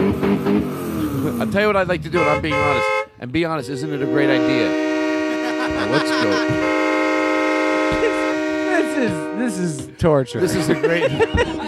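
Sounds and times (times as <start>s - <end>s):
voice imitating engine revving: 0.0s - 3.0s, 3.7s - 6.7s
speech: 1.2s - 4.9s, 5.7s - 6.9s, 8.9s - 11.6s
laughter: 3.9s - 6.8s, 7.8s - 9.5s, 10.4s - 11.6s.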